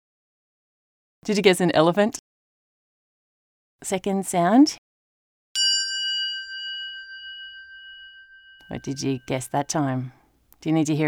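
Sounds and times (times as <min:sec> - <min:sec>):
speech: 0:01.3 - 0:02.2, 0:03.8 - 0:04.8, 0:08.7 - 0:11.0
bell ringing: 0:05.6 - 0:10.2.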